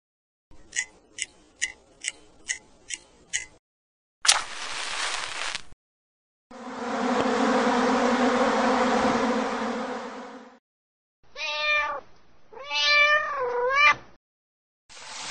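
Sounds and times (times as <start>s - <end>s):
evenly spaced ticks: 0.6s - 3.6s
short crackling burst: 4.3s - 5.8s
bee or wasp buzzing: 6.5s - 10.5s
cat meowing in drawn-out wavering cries: 11.3s - 14.0s.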